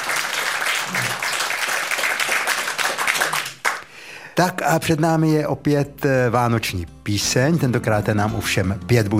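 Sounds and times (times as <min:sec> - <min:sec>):
sustained applause from a sizable audience: 0:00.0 - 0:03.8
speech: 0:04.4 - 0:09.1.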